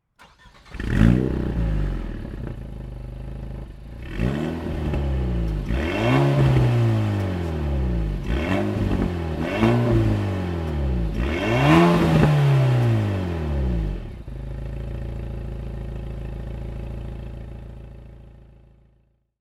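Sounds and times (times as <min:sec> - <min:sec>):
Alpine A110 car engine: 0:00.0 - 0:19.0.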